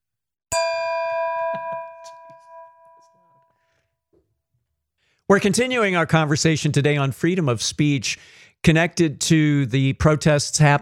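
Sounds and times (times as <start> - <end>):
single bright bell ding: 0.5 - 3.6
speech: 5.3 - 10.8.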